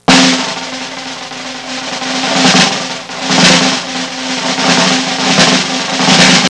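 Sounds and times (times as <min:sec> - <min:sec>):
circus drum roll: 0:00.0 - 0:06.4.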